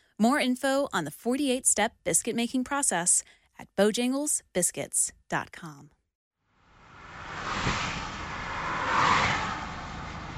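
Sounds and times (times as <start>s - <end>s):
speech: 0.2s - 6.0s
cars whooshing past in highway express toll lanes: 6.6s - 10.3s
steady highway traffic roar: 6.6s - 10.3s.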